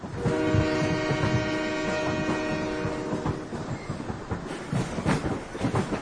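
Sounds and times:
freight train wheels rumbling and clattering: 0.0s - 6.0s
freight train sounding its loud chord-like horn: 0.1s - 3.6s.

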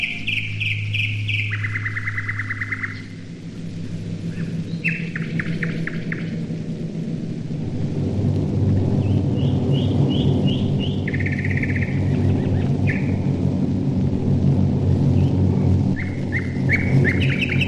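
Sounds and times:
nightingale singing: 0.0s - 3.3s, 4.2s - 6.5s, 9.0s - 13.2s, 16.0s - 17.6s
hiss: 0.0s - 17.6s
steady drone of many aircraft engines: 0.0s - 17.6s.

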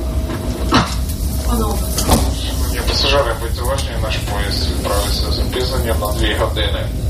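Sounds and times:
constant low rumble of a train waiting at the platform: 0.0s - 7.0s
public address announcement over a train's loudspeaker: 1.3s - 7.0s.

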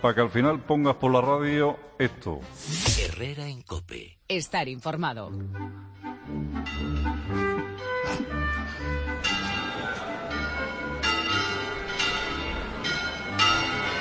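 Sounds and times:
speech: 0.0s - 9.1s
large cathedral bells of the Mosque-Cathedral in Córdoba pealing, calling to mass: 6.5s - 14.0s.

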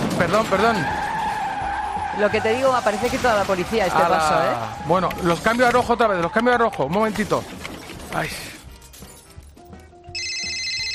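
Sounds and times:
speech: 0.2s - 1.0s, 2.1s - 7.6s, 8.1s - 8.5s
telephone ringing with a high electronic trill: 10.1s - 10.9s.

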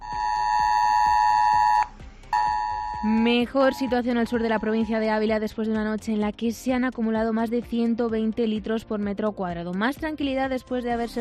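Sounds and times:
mobile phone emergency alert tone beeping: 0.0s - 5.0s
speech: 3.0s - 11.1s.

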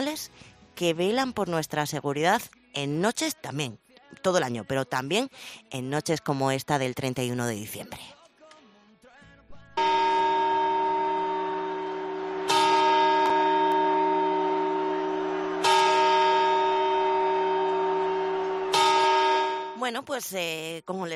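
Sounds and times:
speech: 0.2s - 8.2s, 9.8s - 10.1s, 19.9s - 21.1s
clock bell striking on New Year's Eve: 9.8s - 19.9s.

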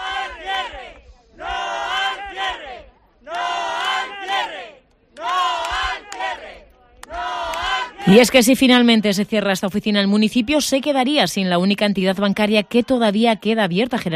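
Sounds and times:
crowd of neighbours chanting in protest outside a bank office: 0.0s - 9.1s, 11.8s - 13.5s
speech: 8.1s - 14.1s.

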